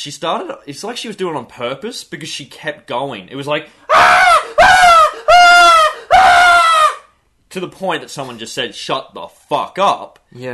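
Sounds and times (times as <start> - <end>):
speech: 0.0 - 4.4, 7.6 - 10.5
person imitating a frightened teenage girl screaming: 3.9 - 7.1.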